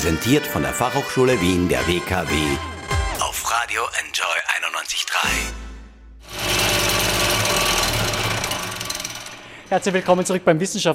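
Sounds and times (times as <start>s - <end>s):
speech: 0.0s - 2.7s, 3.5s - 5.6s, 9.7s - 10.9s
vibrating sieve machine for soil testing rattling and buzzing: 6.3s - 10.8s.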